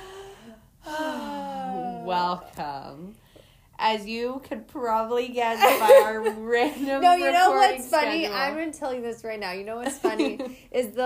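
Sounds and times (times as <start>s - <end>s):
person taking a deep breath before speaking: 0.0s - 1.2s
speech: 2.1s - 3.2s, 3.8s - 11.0s.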